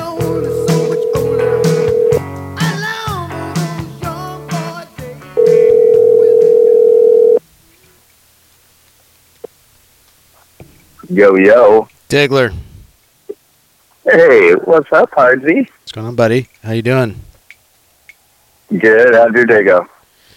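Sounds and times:
long loud telephone tone: 0:00.1 - 0:02.2, 0:05.4 - 0:07.4
steady telephone dial tone: 0:00.7 - 0:02.2, 0:05.4 - 0:07.4
speech: 0:11.2 - 0:12.7, 0:14.1 - 0:17.3, 0:18.7 - 0:19.9.

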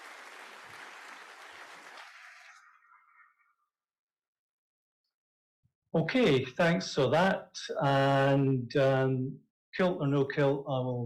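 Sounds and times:
audience applause for a speaker's questions: 0:00.0 - 0:02.7
speech: 0:05.9 - 0:11.0.

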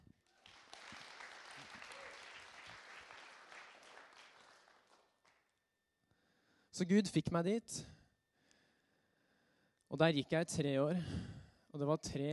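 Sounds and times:
room full of people applauding: 0:00.3 - 0:05.4
speech: 0:06.8 - 0:08.0, 0:10.0 - 0:12.3.

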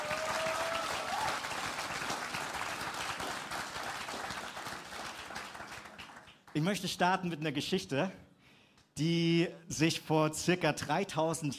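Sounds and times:
crowd applauding: 0:00.0 - 0:06.6
speech: 0:06.6 - 0:08.2, 0:09.0 - 0:11.5.

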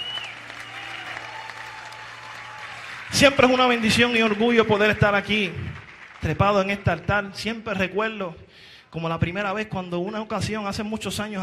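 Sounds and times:
congregation applauding: 0:00.0 - 0:07.9
speech: 0:03.1 - 0:11.4.

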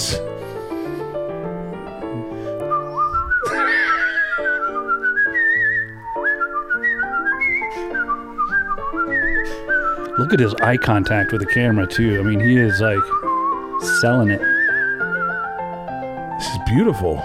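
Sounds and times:
steady instrumental backing music: 0:00.0 - 0:17.2
person whistling a sliding melodic tune: 0:02.0 - 0:15.8
speech: 0:10.3 - 0:13.2, 0:13.8 - 0:14.5, 0:16.7 - 0:17.2.

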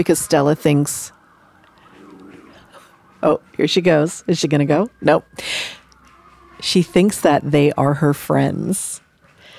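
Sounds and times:
speech: 0:00.0 - 0:01.2, 0:03.2 - 0:05.8, 0:06.6 - 0:09.0
faint emergency vehicle sirens wailing in the neighborhood: 0:00.0 - 0:09.5.

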